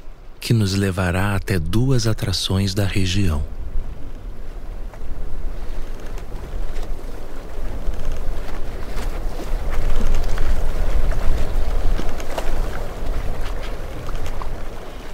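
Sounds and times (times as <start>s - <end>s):
boat engine rumble on the open Mediterranean Sea: 0.0s - 15.1s
rushing water: 0.0s - 15.1s
speech: 0.4s - 3.6s
gusts of wind buffeting the microphone: 3.4s - 15.1s.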